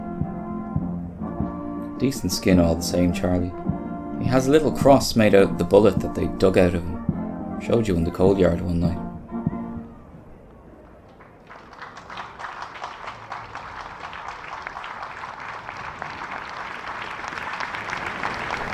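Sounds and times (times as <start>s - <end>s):
speech: 2.0s - 3.6s, 4.2s - 7.0s, 7.6s - 9.0s
stadium crowd cheering and applauding as team walks out: 9.5s - 18.7s.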